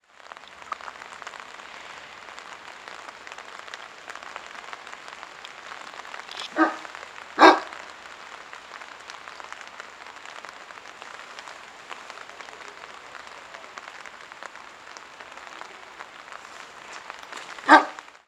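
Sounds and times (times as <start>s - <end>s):
rain: 0.0s - 18.2s
dogs in the rain: 6.4s - 7.8s, 17.4s - 18.0s.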